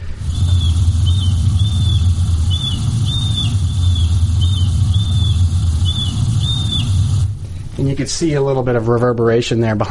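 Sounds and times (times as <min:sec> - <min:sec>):
constant low rumbling drone: 0:00.0 - 0:08.3
flight calls of birds flying over a survey site: 0:00.2 - 0:07.3
speech: 0:08.0 - 0:09.8.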